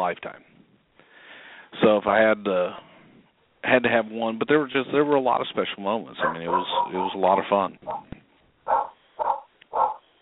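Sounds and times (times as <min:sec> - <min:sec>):
speech: 0:00.0 - 0:00.6, 0:01.7 - 0:02.9, 0:03.6 - 0:08.1
dog barking gruffly: 0:06.2 - 0:07.1, 0:07.8 - 0:08.1, 0:08.7 - 0:10.0.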